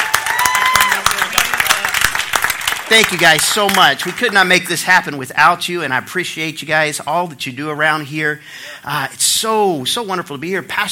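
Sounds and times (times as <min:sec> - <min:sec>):
audience applause for a volunteer team at a church gathering: 0:00.0 - 0:04.5
speech: 0:02.9 - 0:10.8.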